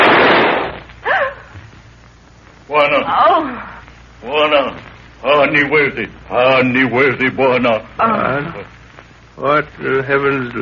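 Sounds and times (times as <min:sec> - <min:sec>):
gunshot: 0:00.0 - 0:00.9
speech: 0:02.7 - 0:08.8, 0:09.4 - 0:10.5.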